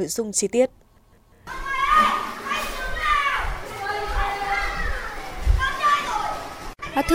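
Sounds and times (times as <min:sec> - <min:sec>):
speech: 0:00.0 - 0:00.8, 0:07.0 - 0:07.1
children shouting, squealing and chattering at indoor playground: 0:01.5 - 0:07.1.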